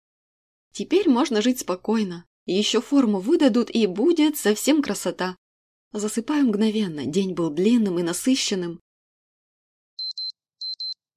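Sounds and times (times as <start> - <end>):
speech: 0.8 - 8.8
electronic alarm clock ringing with high piercing double beeps: 10.0 - 11.0.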